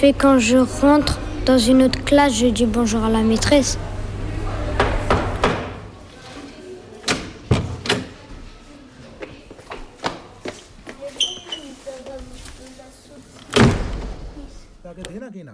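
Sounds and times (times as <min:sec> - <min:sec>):
speech: 0:00.0 - 0:03.9
murmur of voices: 0:00.0 - 0:14.9
sharp knocks on a door: 0:04.8 - 0:05.8
clatter and thud of a door being handled and opened: 0:07.0 - 0:08.3, 0:13.4 - 0:14.4
faint high squeak: 0:11.2 - 0:11.8.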